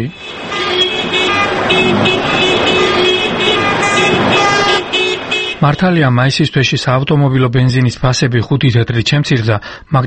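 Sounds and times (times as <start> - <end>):
speech: 0.0 - 0.4, 5.6 - 10.0
car horns honking from a protest motorcade in Tbilisi: 0.0 - 6.2
dense road traffic rumbling in central Tbilisi streets: 0.0 - 7.4.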